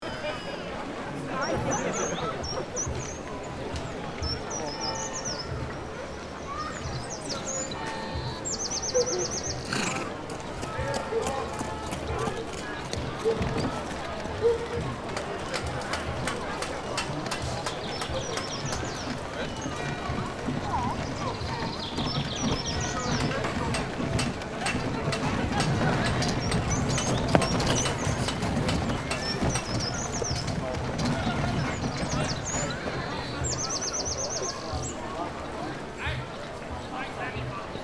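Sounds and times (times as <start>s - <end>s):
people's voices in an old medieval city within the walls: 0.0s - 37.8s.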